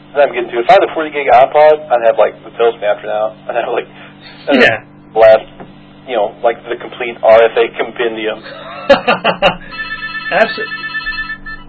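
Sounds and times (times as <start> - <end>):
speech: 0.1 - 5.5, 6.1 - 10.8
laughter: 8.4 - 9.8
telephone ringing with a sustained electronic tone: 9.6 - 11.6.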